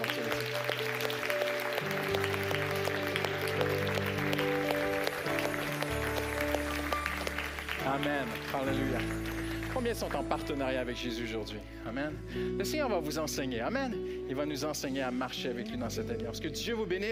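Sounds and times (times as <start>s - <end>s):
congregation applauding loudly: 0.0s - 11.1s
speech: 8.2s - 9.2s, 9.8s - 17.1s.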